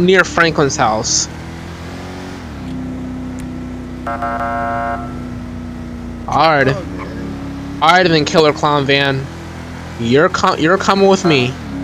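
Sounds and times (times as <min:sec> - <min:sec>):
speech: 0:00.0 - 0:01.4, 0:04.1 - 0:05.2, 0:06.3 - 0:07.0, 0:07.8 - 0:09.3, 0:10.0 - 0:11.6
video game car engine droning and accelerating: 0:00.0 - 0:11.8
short video game car horn honk: 0:04.0 - 0:05.4.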